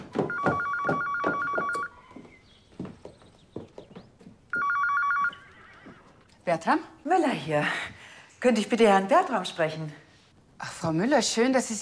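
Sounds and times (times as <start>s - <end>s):
horse hooves clip-clopping: 0.0s - 6.4s
telephone ringing in trilling electronic bursts: 0.2s - 2.1s, 4.5s - 6.2s
speech: 6.5s - 10.0s, 10.6s - 11.8s.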